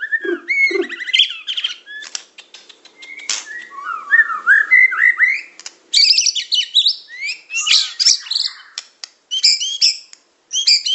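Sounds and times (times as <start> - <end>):
songbird song with harsh buzzy bursts, scratchy clicks and whistled notes: 0.0 - 10.9.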